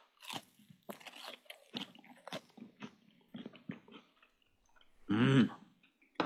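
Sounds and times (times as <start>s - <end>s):
biting and chewing fried horse mackerel with sauce and lemon: 0.0s - 4.9s.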